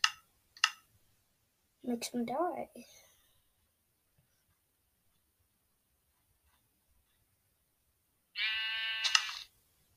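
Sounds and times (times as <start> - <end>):
speech: 1.8 - 3.0
sheep bleat in a video game: 8.4 - 9.0.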